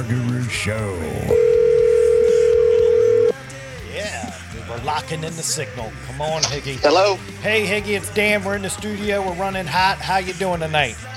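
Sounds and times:
speech: 0.0s - 1.5s, 4.8s - 11.1s
telephone dial tone from a studio phone system: 1.3s - 3.4s.

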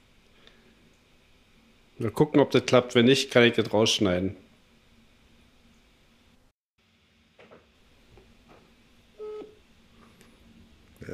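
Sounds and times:
speech: 2.0s - 4.4s
electronic telephone keypad tone: 9.2s - 9.6s.

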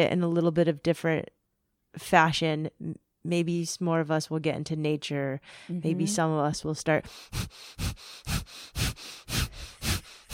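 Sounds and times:
speech: 0.0s - 8.9s
rapid nasal breathing of breath of fire in Kundalini practice: 7.0s - 10.3s.

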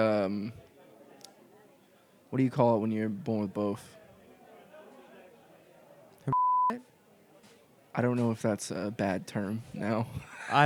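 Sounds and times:
speech: 0.0s - 0.6s, 2.3s - 4.0s, 6.3s - 6.9s, 8.0s - 10.6s
censorship bleep tone: 6.3s - 6.8s.

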